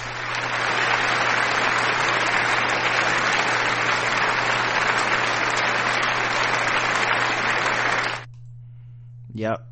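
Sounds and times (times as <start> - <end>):
crowd applauding: 0.0 - 8.3
faint low hum: 3.9 - 9.7
speech: 9.4 - 9.7.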